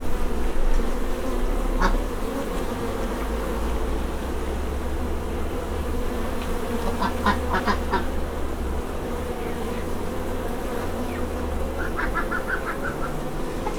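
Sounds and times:
honey bees swarming in a farmyard: 0.0 - 13.7
duck in a farmyard: 7.0 - 8.1, 11.8 - 13.7.

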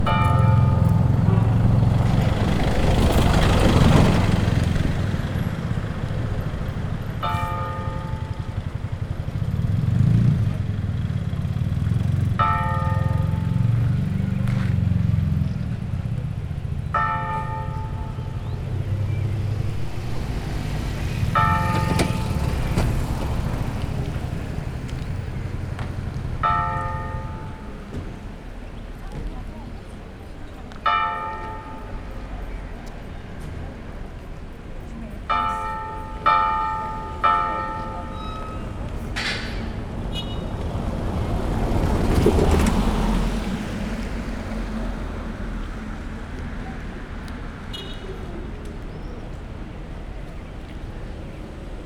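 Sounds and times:
bells ringing: 0.0 - 10.3, 11.7 - 15.3, 16.0 - 25.5, 26.4 - 28.6, 30.5 - 34.4, 35.1 - 39.8
light vehicle traffic: 0.0 - 51.8.

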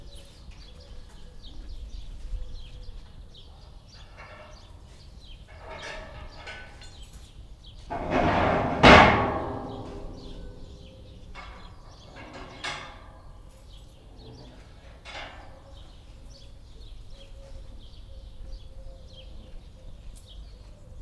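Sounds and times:
sloth bear enclosure grate opening: 7.9 - 11.4.

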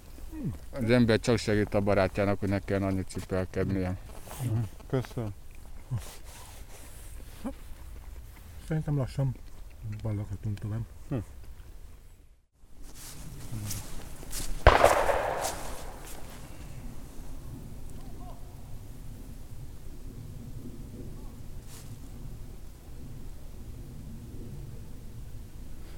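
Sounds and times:
quiet outdoor noise: 0.0 - 25.9
speech: 0.3 - 6.4, 7.4 - 7.6, 8.7 - 11.4
hunting gunshot with short rolling echo: 14.4 - 17.5.

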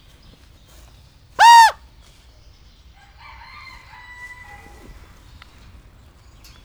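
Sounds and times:
peacock crying at Nyíregyháza zoo: 1.4 - 1.8.

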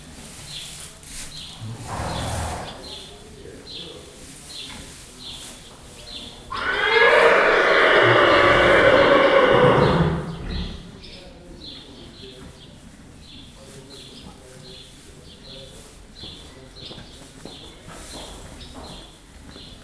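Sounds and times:
horse neighing in a stable: 1.6 - 2.9, 6.5 - 10.9.

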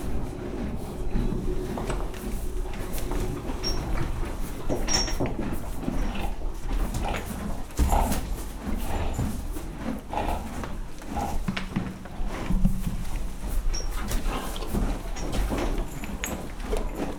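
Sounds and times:
low steady rumble: 0.0 - 7.0
horse chewing hay in a stable: 0.0 - 17.1.

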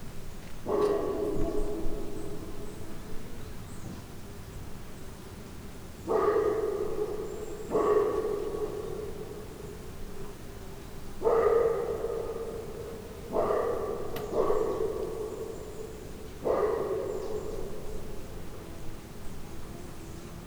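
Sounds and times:
dog barking echoing in the distance: 0.6 - 3.3, 6.0 - 10.4, 11.2 - 19.0.

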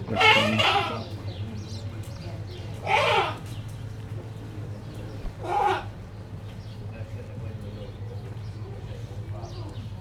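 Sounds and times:
domestic goat making an interesting sound in a zoo: 0.0 - 1.0, 2.8 - 3.4.

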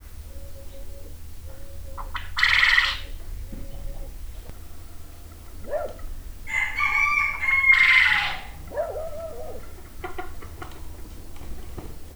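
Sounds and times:
poultry in a farmyard: 0.0 - 12.1
quail in a farmyard: 0.0 - 12.1
dog in a farmyard: 5.6 - 6.0, 8.7 - 9.6.

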